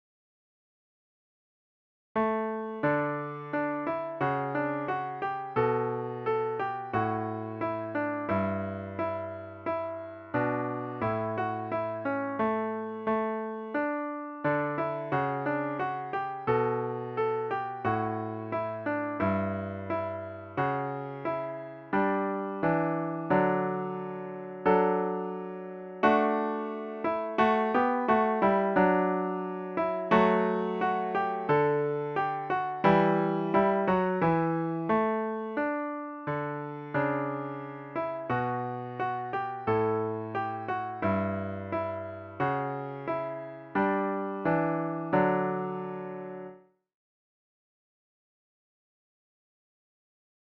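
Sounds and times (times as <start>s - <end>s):
piano solo of a folk tune: 2.2s - 46.7s.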